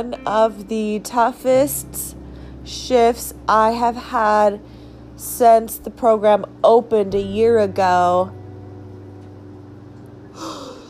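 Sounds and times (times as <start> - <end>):
speech: 0.0 - 8.4
low steady hum: 0.0 - 10.8
person yawning with breathy gasping intake: 10.4 - 10.8.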